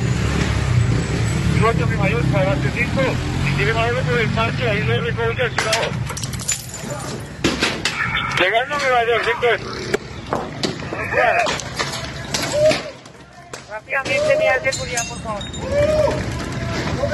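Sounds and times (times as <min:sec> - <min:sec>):
steady traffic rumble: 0:00.0 - 0:17.1
speech: 0:01.6 - 0:06.2, 0:08.4 - 0:11.6, 0:13.7 - 0:16.4
several voices shouting and yelling in a street clash: 0:06.8 - 0:09.6, 0:10.4 - 0:17.1.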